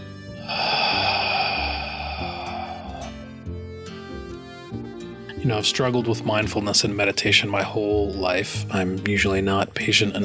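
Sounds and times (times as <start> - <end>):
long slow steady exhale: 0.3 - 3.6
speech: 5.4 - 10.2.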